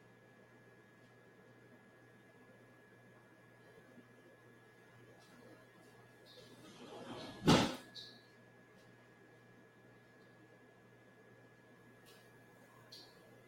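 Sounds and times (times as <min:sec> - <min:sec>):
steady low hum: 0:00.0 - 0:13.4
sliding door rolling open and closing: 0:06.7 - 0:07.8.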